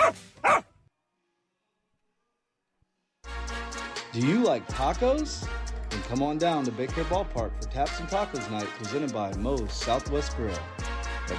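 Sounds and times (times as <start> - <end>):
dog barking: 0.0 - 0.7
speech: 4.2 - 11.3.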